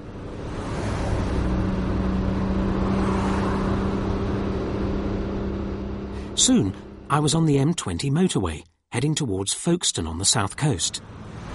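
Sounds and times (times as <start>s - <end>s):
car engine rumbling as the car drives away: 0.0s - 8.6s
road noise of a moving car: 0.0s - 8.6s, 10.0s - 11.5s
speech: 6.4s - 11.5s.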